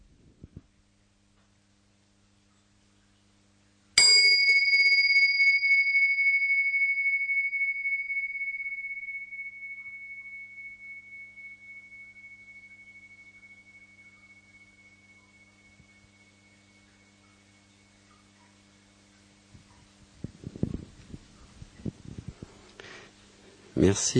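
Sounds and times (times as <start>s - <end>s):
small bell struck to start a session: 4.0s - 18.5s
speech: 23.8s - 24.1s.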